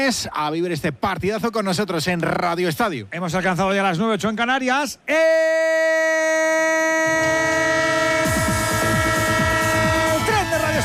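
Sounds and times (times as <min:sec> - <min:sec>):
speech: 0:00.0 - 0:06.2
train horn: 0:07.4 - 0:10.7.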